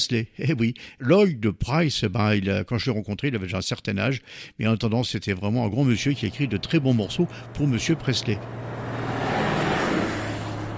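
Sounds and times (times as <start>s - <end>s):
speech: 0.0s - 8.8s
bus engine running: 5.6s - 10.7s.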